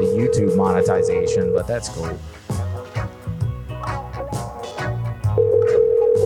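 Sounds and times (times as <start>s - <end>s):
steady electronic phone dialing tone: 0.0s - 1.6s, 5.4s - 6.2s
music: 0.0s - 6.2s
speech: 0.2s - 2.6s.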